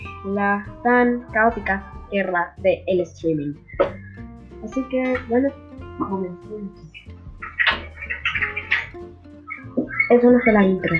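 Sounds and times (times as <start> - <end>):
speech: 0.2 - 4.0, 4.7 - 7.2, 10.1 - 10.9
bird chirping and squawking: 3.6 - 5.3, 6.2 - 10.9.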